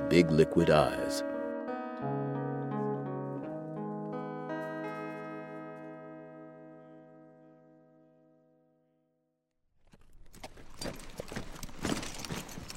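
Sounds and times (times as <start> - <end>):
ringing sustained chord: 0.0 - 8.9
speech: 0.1 - 1.3
bay horse hooves clip-clopping: 9.8 - 12.7.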